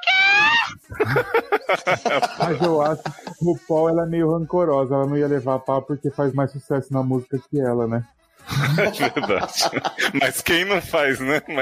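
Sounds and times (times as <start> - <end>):
short shrill imitated scream: 0.0 - 0.8
speech: 0.6 - 11.6
laughter: 0.8 - 3.5, 8.5 - 11.6
person talking rapidly: 2.1 - 8.0, 9.0 - 11.6.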